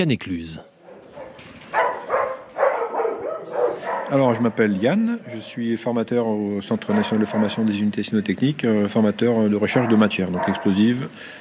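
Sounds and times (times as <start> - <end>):
speech: 0.0 - 0.7, 4.1 - 11.3
faint hum: 0.6 - 11.3
police detection dog barking: 0.7 - 5.5, 6.8 - 7.8, 9.7 - 11.0.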